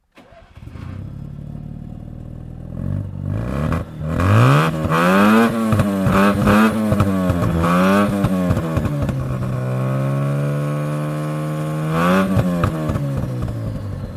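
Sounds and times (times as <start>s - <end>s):
NSU Ro 80 engine starting: 0.0s - 14.1s.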